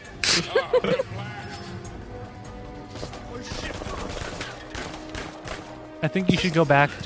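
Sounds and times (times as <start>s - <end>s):
laughter: 0.2s - 1.5s
speech: 0.4s - 1.5s, 6.0s - 7.0s
gunfire in a video game trailer: 2.9s - 6.0s.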